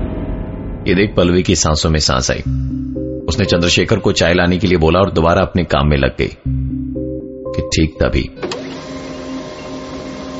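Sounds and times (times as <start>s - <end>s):
speech: 0.8s - 6.6s, 7.6s - 8.6s
printer mechanical clack: 8.4s - 9.0s
printer motor whirring while printing blank pages: 8.4s - 10.3s.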